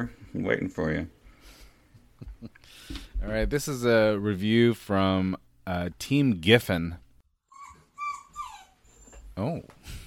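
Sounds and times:
speech: 0.0 - 1.2, 2.4 - 7.0, 9.4 - 10.0
dog making high-pitched whining yelps in a room: 7.4 - 9.4.

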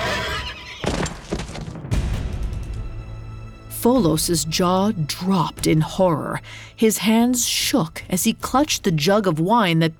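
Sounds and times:
horse neighing in agony: 0.0 - 1.0
heavy crash and clatter: 0.8 - 2.8
speech: 3.8 - 9.9.

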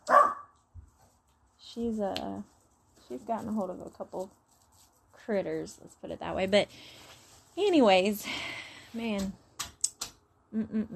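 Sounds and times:
dog barking: 0.0 - 0.6
speech: 1.8 - 4.4, 5.3 - 7.0, 7.6 - 9.4, 10.5 - 10.9.

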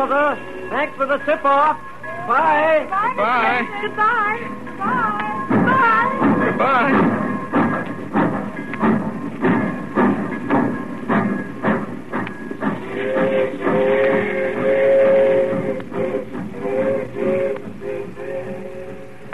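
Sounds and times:
speech: 0.0 - 7.5
train pulling away chugging: 0.0 - 19.3
long shrill whistle-like train tone: 12.8 - 19.3.

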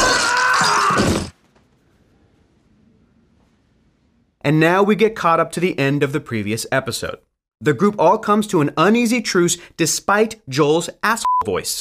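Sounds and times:
glass from a glass trap shattering: 0.0 - 1.4
speech: 4.4 - 11.7.

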